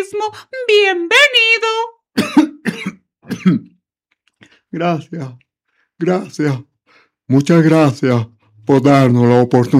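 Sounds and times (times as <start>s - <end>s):
speech: 0.2s - 1.9s, 3.4s - 3.7s, 4.8s - 6.7s, 7.3s - 9.7s
person coughing and clearing their throat after choking slightly: 2.2s - 3.8s.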